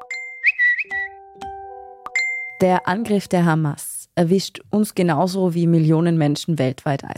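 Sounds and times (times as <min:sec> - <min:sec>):
smartphone notification chimes: 0:00.0 - 0:03.4
speech: 0:02.6 - 0:07.1.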